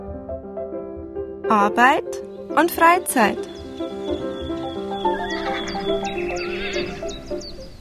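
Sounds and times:
speech: 0:01.5 - 0:04.3
horses neighing: 0:04.9 - 0:07.4.

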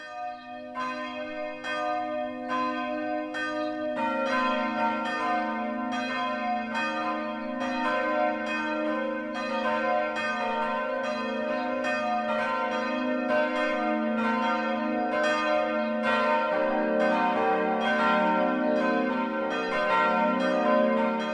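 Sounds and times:
four new church bells ringing at noon at St. Jakobus church in Dürren-Mungenau: 0:00.0 - 0:21.3.

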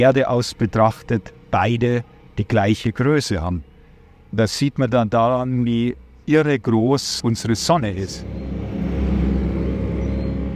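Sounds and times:
speech: 0:00.0 - 0:03.7, 0:04.3 - 0:08.4
propeller-driven airboat on border patrol roaring past: 0:07.2 - 0:10.5.

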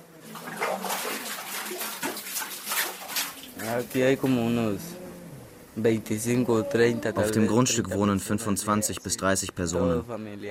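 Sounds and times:
water splashing in a light bucket hauled up from a dug well: 0:00.0 - 0:04.1
speech: 0:03.7 - 0:04.9, 0:05.8 - 0:10.5.

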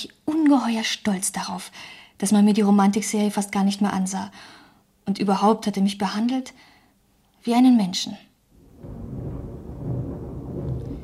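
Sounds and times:
speech: 0:00.4 - 0:06.7, 0:07.4 - 0:09.0
thunder rumbling: 0:08.5 - 0:11.0.

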